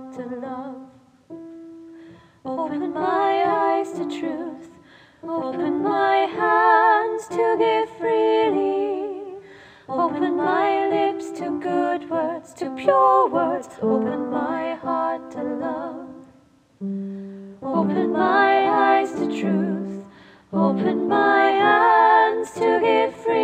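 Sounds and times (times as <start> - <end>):
open SATB choir singing: 2.7 - 16.3, 17.6 - 23.4.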